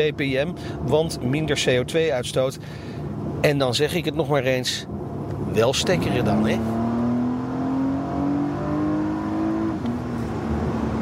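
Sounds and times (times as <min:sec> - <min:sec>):
speech: 0:00.0 - 0:06.8
Porsche Panamera 4S E-Hybrid four-wheel drive car engine accelerating: 0:05.2 - 0:11.0.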